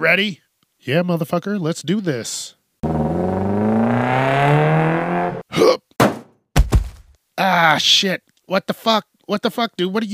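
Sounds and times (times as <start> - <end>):
speech: 0.0 - 4.8, 7.7 - 10.1
car engine revving while accelerating hard: 2.8 - 5.4
heavy thump: 6.0 - 7.1.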